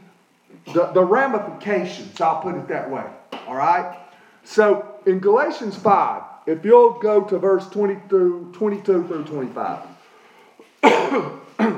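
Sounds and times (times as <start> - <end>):
harsh cough during a sermon: 0.6 - 1.0, 10.8 - 11.7
speech: 0.7 - 9.9, 10.8 - 11.4
preacher speaking during a sermon: 0.7 - 10.0.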